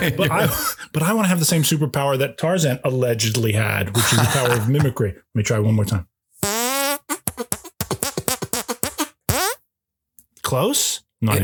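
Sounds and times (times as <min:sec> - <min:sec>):
laughter: 0:00.0 - 0:00.9, 0:03.9 - 0:05.0
speech: 0:00.0 - 0:06.1, 0:10.5 - 0:11.4
hand fart noise made with hands: 0:06.4 - 0:09.6.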